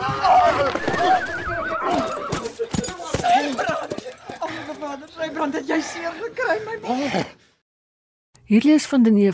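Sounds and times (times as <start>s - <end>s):
horse whinnying: 0.1s - 2.8s
speech: 5.5s - 7.4s, 8.5s - 9.3s.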